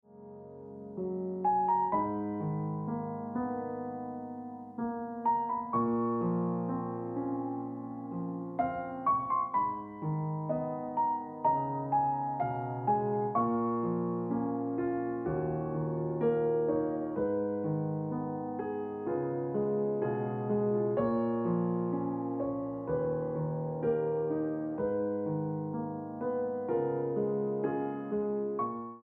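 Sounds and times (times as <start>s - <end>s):
piano music: 0.0s - 29.0s.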